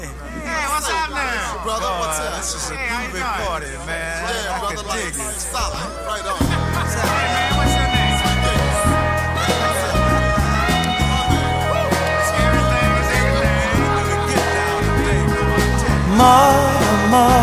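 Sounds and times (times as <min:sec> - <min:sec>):
laughter: 0:00.0 - 0:17.4
several voices chatting and greeting at a party: 0:00.0 - 0:17.4
speech: 0:01.6 - 0:06.4
bass-heavy musical backing: 0:06.4 - 0:17.4.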